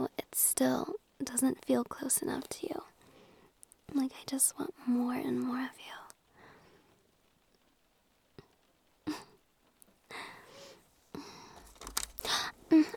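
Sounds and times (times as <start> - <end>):
speech: 0.6 - 2.9, 3.9 - 6.0
papers and textbooks rustling and crinkling: 11.5 - 12.9.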